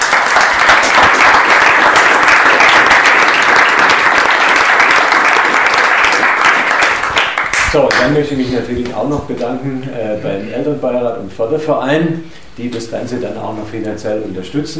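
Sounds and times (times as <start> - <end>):
audience applause: 0.0 - 8.1
speech: 7.8 - 14.7.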